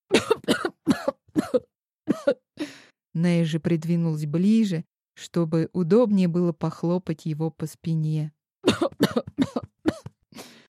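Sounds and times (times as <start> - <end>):
person coughing convulsively after choking on food: 0.1 - 2.5, 8.6 - 10.2
speech: 3.2 - 9.7.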